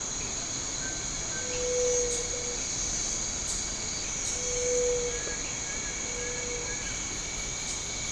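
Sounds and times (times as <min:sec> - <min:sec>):
outdoor ambience: 0:00.0 - 0:08.1.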